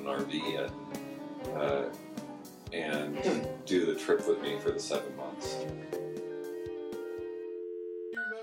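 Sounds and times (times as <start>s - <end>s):
speech: 0.0s - 2.1s, 2.7s - 6.2s
electronic telephone call tone: 6.0s - 8.4s.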